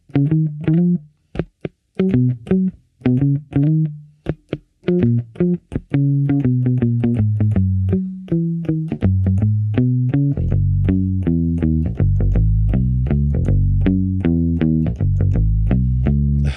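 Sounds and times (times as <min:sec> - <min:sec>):
short-scale electric bass with Dunlop strings played with a pick: 0:00.0 - 0:16.5.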